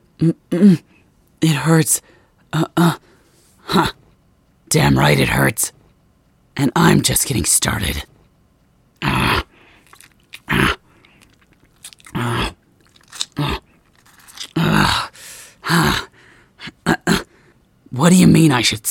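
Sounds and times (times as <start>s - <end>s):
speech: 0.2s - 3.1s, 3.7s - 4.0s, 4.7s - 5.8s, 6.6s - 8.1s, 18.0s - 18.8s
guttural growls: 9.0s - 9.5s, 10.4s - 10.8s, 12.1s - 12.6s, 13.2s - 13.8s
werewolf snarling and biting: 9.0s - 16.1s
crunching chewing: 9.6s - 15.1s.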